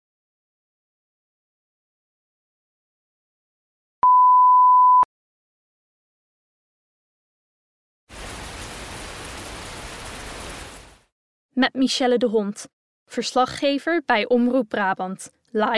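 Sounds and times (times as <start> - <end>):
electronic beep: 4.0 - 5.1
rain falling outside the Dutch parliament building in The Hague: 8.1 - 11.1
speech: 11.6 - 15.7.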